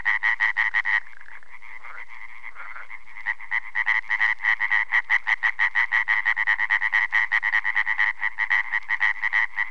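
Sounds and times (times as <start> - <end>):
European tree frog chorus croaking: 0.0 - 9.6.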